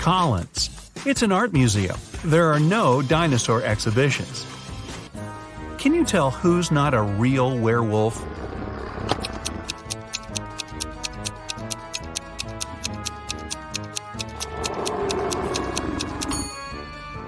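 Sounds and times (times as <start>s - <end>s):
speech: 0.0s - 4.6s, 5.8s - 8.5s
light playful music: 0.0s - 8.2s, 9.0s - 17.2s
clock ticking: 9.1s - 16.4s.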